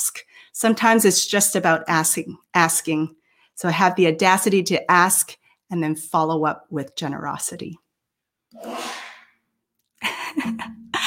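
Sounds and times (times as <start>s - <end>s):
speech: 0.5s - 7.8s, 8.5s - 8.9s
person sneezing: 8.6s - 9.3s.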